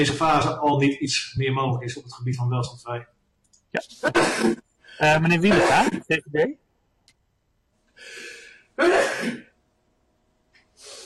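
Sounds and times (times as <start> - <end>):
speech: 0.0 - 6.6, 8.0 - 9.5
person sneezing loudly: 4.0 - 4.6, 5.5 - 6.0.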